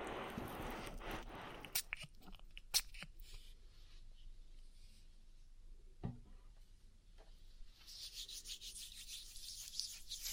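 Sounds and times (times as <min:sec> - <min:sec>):
muffled rubbing and crackling of an oiled ear massage: 0:00.0 - 0:03.6, 0:07.7 - 0:10.3.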